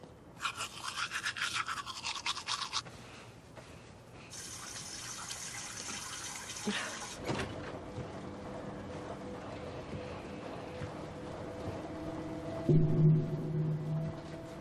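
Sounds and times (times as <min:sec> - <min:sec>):
person washing hands and face at a running tap: 0:00.4 - 0:02.8, 0:04.3 - 0:07.2
water gushing from a faucet: 0:04.3 - 0:07.2
washing machine running with a mechanical hum: 0:04.3 - 0:14.4.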